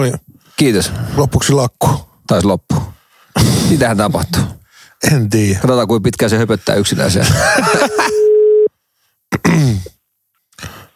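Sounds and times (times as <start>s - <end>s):
speech: 0.0s - 8.1s
laughter: 7.2s - 8.2s
steady mid-pitched telephone busy tone: 7.7s - 8.7s.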